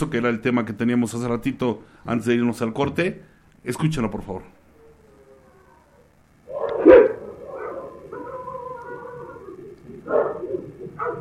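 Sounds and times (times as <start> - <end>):
speech: 0.0 - 4.6
dog whining howl-like tones: 4.8 - 11.1
dogs barking: 6.5 - 11.1.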